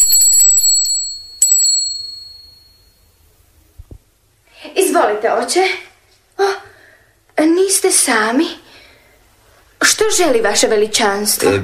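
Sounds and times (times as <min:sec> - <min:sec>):
small bell ringing: 0:00.0 - 0:03.1
speech: 0:05.0 - 0:06.7, 0:07.4 - 0:08.6, 0:09.9 - 0:11.6.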